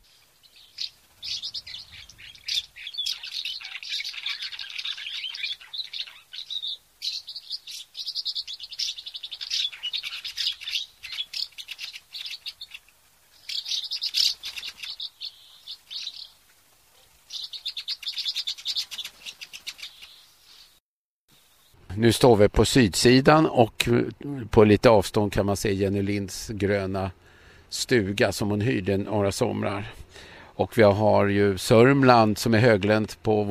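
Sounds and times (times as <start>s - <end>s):
swallows chirping and twittering: 0.0s - 16.4s, 17.0s - 20.8s
speech: 22.0s - 27.2s, 27.9s - 30.0s, 30.6s - 33.4s.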